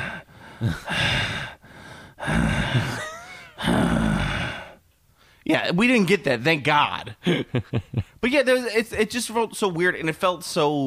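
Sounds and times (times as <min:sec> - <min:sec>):
person imitating heavy breathing: 0:00.0 - 0:05.4
speech: 0:00.6 - 0:01.3, 0:02.3 - 0:03.0, 0:05.5 - 0:10.8.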